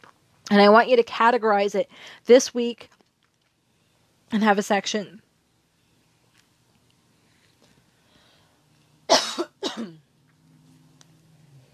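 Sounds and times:
speech: 0:00.5 - 0:03.0, 0:04.3 - 0:05.2
harsh coughs: 0:09.1 - 0:10.0.

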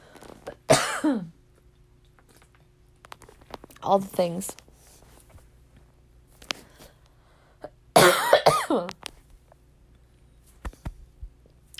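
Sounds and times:
person coughing harshly: 0:00.7 - 0:01.4, 0:08.0 - 0:09.0
speech: 0:01.0 - 0:01.4, 0:03.8 - 0:04.6.

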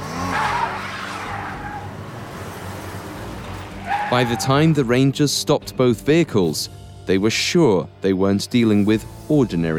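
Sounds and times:
car tires squealing while skidding off the road: 0:00.0 - 0:04.8
car engine roaring: 0:00.0 - 0:05.1
speech: 0:04.1 - 0:09.7.

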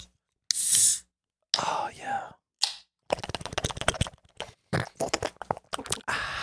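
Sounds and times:
can of Asian pear seltzer water opening: 0:00.5 - 0:01.0
slurping and gulping seltzer water: 0:03.1 - 0:06.2.

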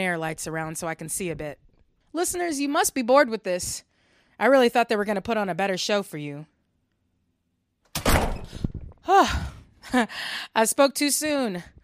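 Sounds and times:
speech: 0:00.0 - 0:06.5, 0:09.0 - 0:11.8
heavy door slamming shut: 0:07.9 - 0:08.7.

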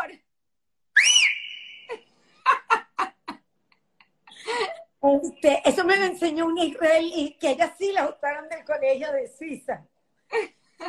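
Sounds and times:
person whistling loudly: 0:01.0 - 0:01.9
short bursts of laughter: 0:01.8 - 0:04.9, 0:10.3 - 0:10.8
speech: 0:05.1 - 0:10.5.

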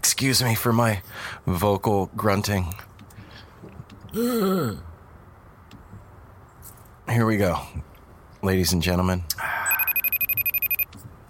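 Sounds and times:
speech: 0:00.0 - 0:02.9, 0:04.1 - 0:04.9, 0:07.1 - 0:09.5
telephone ringing with electronic warble: 0:09.7 - 0:10.9.

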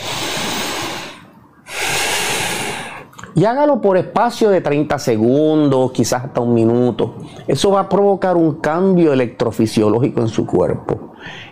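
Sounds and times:
deep breathing in a seated relaxation exercise: 0:00.0 - 0:03.1, 0:11.1 - 0:11.5
speech: 0:03.4 - 0:11.5.

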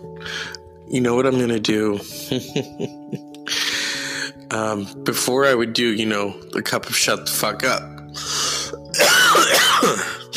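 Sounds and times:
speech: 0:00.9 - 0:03.3, 0:04.5 - 0:08.3
loud raspy gravelly cough: 0:08.9 - 0:10.3.

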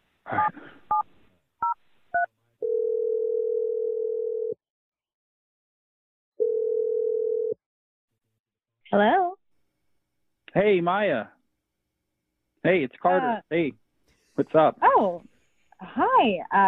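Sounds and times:
long steady loud telephone tones: 0:01.6 - 0:04.6, 0:06.4 - 0:07.6
speech: 0:10.6 - 0:11.4, 0:12.6 - 0:13.8, 0:14.4 - 0:16.6.

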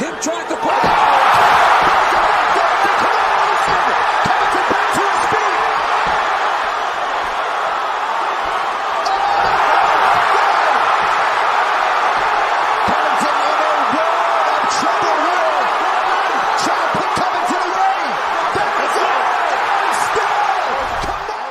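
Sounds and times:
crowd roaring at a mixed martial arts fight: 0:00.0 - 0:21.5
punches landing in a mixed martial arts fight: 0:00.6 - 0:14.9.

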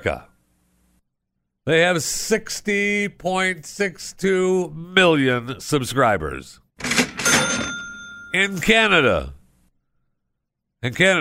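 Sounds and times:
speech: 0:00.0 - 0:00.3, 0:01.6 - 0:07.0, 0:08.4 - 0:09.4, 0:10.8 - 0:11.1
cash register ka-ching with a rattling drawer: 0:06.8 - 0:08.5.

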